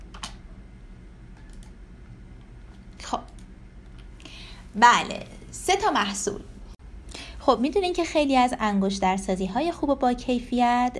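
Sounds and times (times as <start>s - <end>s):
computer mouse clicks: 1.4s - 1.8s
speech: 4.7s - 6.5s, 7.5s - 10.9s.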